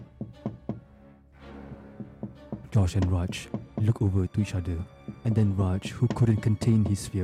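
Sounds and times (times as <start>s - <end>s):
hollow knocks from a corridor: 0.0s - 0.9s, 1.7s - 4.4s, 5.0s - 7.2s
speech: 2.7s - 7.2s.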